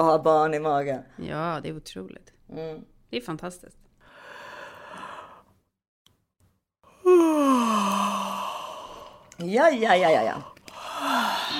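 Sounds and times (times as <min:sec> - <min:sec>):
speech: 0:00.0 - 0:03.8, 0:09.4 - 0:10.5
person yawning: 0:06.9 - 0:09.2, 0:10.8 - 0:11.5.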